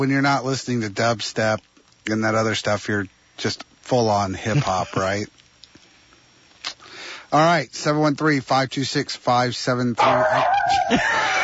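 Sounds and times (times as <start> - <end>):
speech: 0.0 - 5.4, 7.3 - 11.4
laughter: 4.5 - 5.2, 10.6 - 11.4
dog barking: 10.0 - 11.0.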